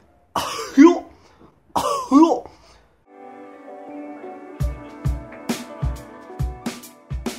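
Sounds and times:
person imitating a cartoon character cough: 0.3 - 2.7
music with steady rhythmic thumps: 4.6 - 7.3.

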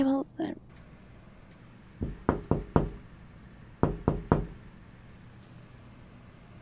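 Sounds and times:
firm knocking on a hospital room door: 2.0 - 3.1, 3.8 - 4.6.

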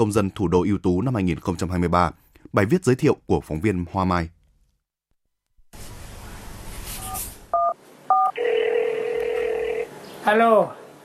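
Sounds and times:
speech: 0.0 - 4.4, 10.3 - 10.8
steady telephone tone: 7.6 - 9.9.

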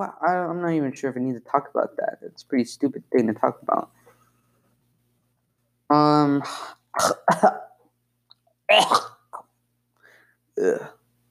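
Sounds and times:
speech: 0.0 - 4.0, 5.9 - 7.7, 8.7 - 9.2, 10.6 - 11.0
person coughing: 7.0 - 7.8, 8.7 - 9.4
throat clearing: 7.0 - 7.8.

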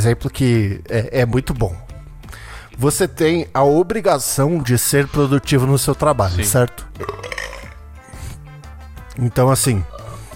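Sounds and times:
speech: 0.0 - 1.9, 2.8 - 7.2, 9.2 - 10.0
loud drawn-out croaky burp: 7.0 - 7.8.

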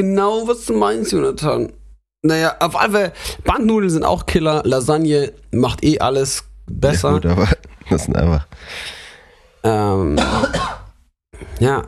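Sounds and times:
speech: 0.0 - 9.0, 9.6 - 10.8, 11.4 - 11.8
person coughing: 10.1 - 10.9.

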